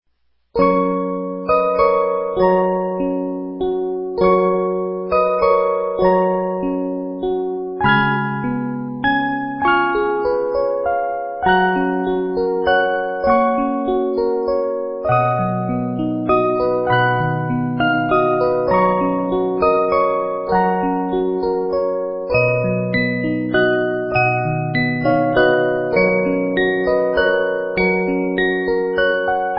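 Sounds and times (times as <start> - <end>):
50 note music box playing a carol: 0.7 - 29.5.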